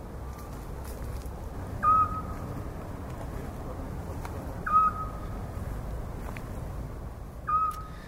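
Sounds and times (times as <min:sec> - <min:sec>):
steady low rumble and hiss of noise: 0:00.0 - 0:08.0
little owl hooting: 0:01.8 - 0:02.4, 0:04.6 - 0:05.4, 0:07.4 - 0:08.0.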